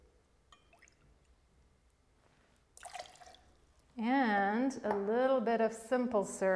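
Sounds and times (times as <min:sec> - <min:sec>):
faint drips: 0:00.5 - 0:04.0
lime juice being poured into a glass for a cocktail: 0:02.8 - 0:03.9
speech: 0:04.0 - 0:06.5.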